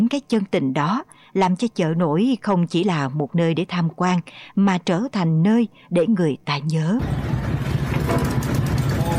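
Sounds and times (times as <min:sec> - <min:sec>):
speech: 0:00.1 - 0:08.4
boat engine chugging on the river: 0:07.0 - 0:09.1.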